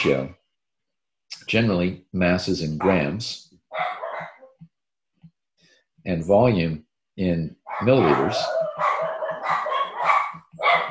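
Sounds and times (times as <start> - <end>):
speech: 0.0 - 0.4, 1.5 - 4.0, 6.0 - 9.6
household pet dogs barking agitatedly: 3.7 - 4.6, 7.6 - 10.8.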